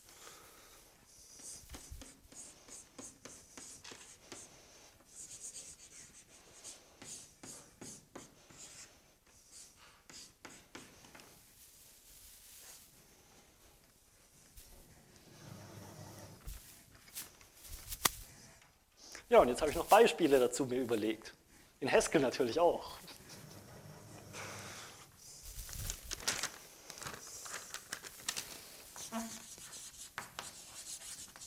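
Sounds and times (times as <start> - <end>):
writing on a board during a programming lesson: 1.2 - 11.4, 29.0 - 31.4
speech: 19.3 - 23.2.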